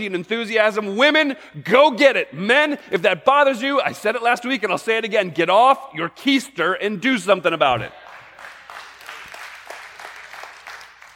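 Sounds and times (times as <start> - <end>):
speech: 0.0 - 8.0
audience clapping: 7.7 - 11.1.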